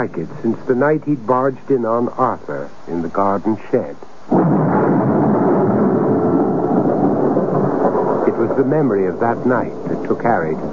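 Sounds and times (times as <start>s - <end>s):
speech: 0.0s - 4.8s, 8.6s - 10.7s
rumble of thunder during a storm: 4.3s - 10.7s.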